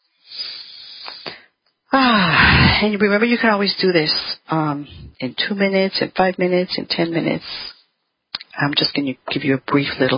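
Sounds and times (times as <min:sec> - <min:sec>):
deep breath during a guided meditation: 0:00.1 - 0:02.8
speech: 0:02.8 - 0:07.8, 0:08.6 - 0:10.1.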